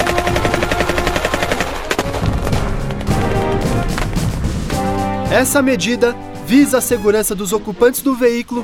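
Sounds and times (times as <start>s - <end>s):
rapid bursts of rifle gunfire: 0.0s - 2.6s
dense rumbling background: 2.0s - 8.6s
speech: 5.4s - 8.6s.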